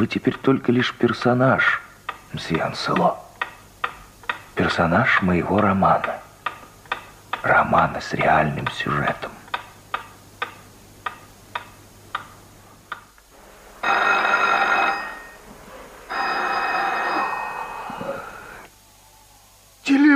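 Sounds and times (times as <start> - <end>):
speech: 0.0 - 3.2, 4.6 - 6.2, 7.4 - 9.4
clock ticking: 0.0 - 13.2
old-fashioned telephone bell ringing with metallic trills: 13.8 - 15.4, 16.1 - 18.6.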